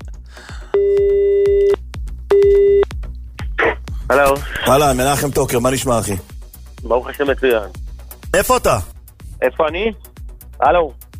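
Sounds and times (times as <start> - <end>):
telephone ringback tone while placing a call: 0.8 - 2.8
speech: 4.1 - 7.8, 8.4 - 10.0, 10.6 - 11.0.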